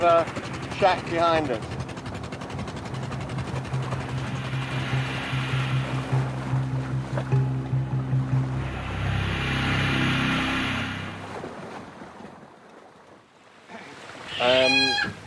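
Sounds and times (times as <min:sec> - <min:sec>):
speech: 0:00.0 - 0:01.8
boat engine droning while mooring against a jetty: 0:00.0 - 0:13.4
water washing and sloshing against a jetty: 0:00.0 - 0:15.2
brief rising tonal sound: 0:03.3 - 0:11.9.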